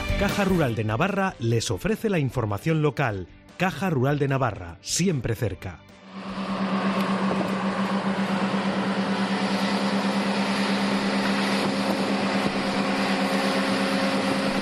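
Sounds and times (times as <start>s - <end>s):
speech: 0.2s - 6.4s
tractor engine droning: 6.0s - 14.5s.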